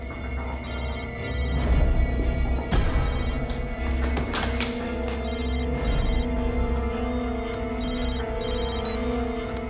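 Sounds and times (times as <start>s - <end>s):
dense droning background: 0.0s - 9.6s
phone ringing with an electronic tone: 0.6s - 1.7s, 3.1s - 3.4s, 5.2s - 6.3s, 7.8s - 9.0s.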